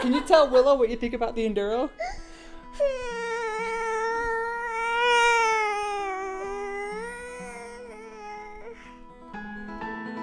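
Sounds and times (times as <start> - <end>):
speech: 0.0 - 2.2, 2.8 - 3.2
toddler wailing: 2.0 - 9.0.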